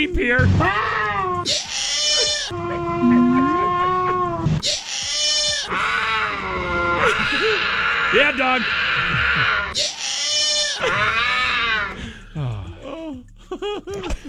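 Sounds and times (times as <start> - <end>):
speech: 0.0 - 1.8, 8.1 - 9.9
cougar mating yowls and screeches: 0.6 - 12.0
laughter: 2.5 - 4.5, 6.9 - 7.7, 9.0 - 9.7, 10.8 - 14.2.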